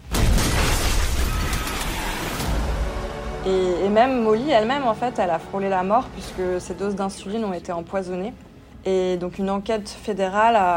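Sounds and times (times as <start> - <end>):
bomb explosion blowing up a house: 0.0 - 3.5
speech: 3.4 - 10.7.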